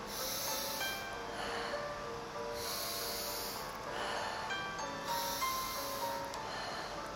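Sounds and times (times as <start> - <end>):
quiet sustained ambient musical drone: 0.0 - 7.1
slow breathing in through nose and out through mouth: 0.0 - 7.1.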